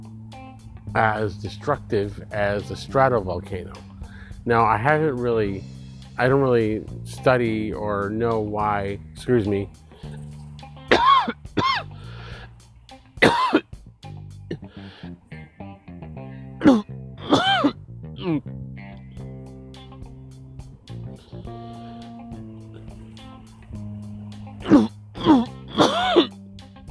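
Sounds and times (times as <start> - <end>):
speech: 0.9 - 9.8
voiced groans and throat sounds: 9.8 - 12.5, 14.4 - 15.2, 18.2 - 18.6, 24.5 - 26.4
person coughing from allergy: 10.9 - 11.9, 13.2 - 13.6, 14.5 - 14.7, 16.6 - 18.4, 24.6 - 26.4.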